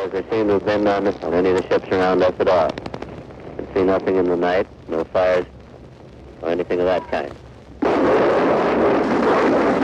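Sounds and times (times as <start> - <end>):
speech: 0.1 - 2.8, 3.8 - 5.6, 6.4 - 7.4
heavy battle gunfire and blasts during D-Day: 7.8 - 9.8.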